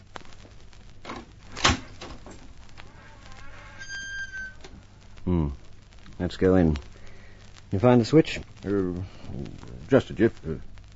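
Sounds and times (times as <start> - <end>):
low hum: 0.0 - 10.9
door creaking open on a squeaky hinge: 1.1 - 4.8
speech: 5.3 - 5.6, 6.2 - 6.9, 7.7 - 10.7.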